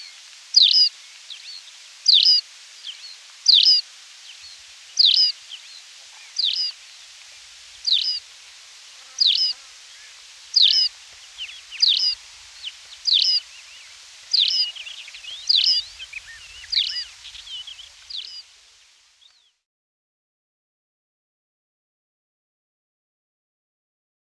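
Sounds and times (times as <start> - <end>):
background hiss: 0.0 - 19.6
Tawny pipit song: 0.6 - 6.8, 7.8 - 8.2, 9.1 - 18.5.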